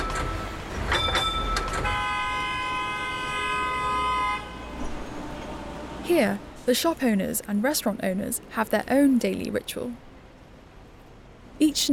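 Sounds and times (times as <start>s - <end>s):
clanging tram bell strikes: 0.0s - 2.0s
street traffic rumbling in Hong Kong: 0.0s - 11.9s
long steady car horn blast from a frustrated driver: 1.8s - 4.7s
speech: 6.1s - 10.1s, 11.6s - 11.9s.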